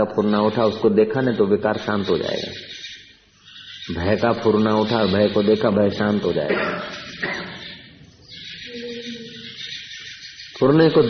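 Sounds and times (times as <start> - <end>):
speech: 0.0 - 2.8, 3.9 - 7.5, 10.6 - 11.0
birds chirping in an outdoor chorus: 0.0 - 11.0
low cooing-like tones: 7.2 - 9.8.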